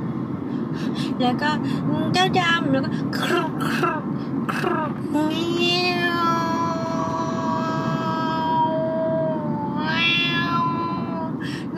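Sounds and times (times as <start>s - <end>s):
speech: 0.8s - 6.3s
injured cat meowing and yowling: 5.4s - 11.4s.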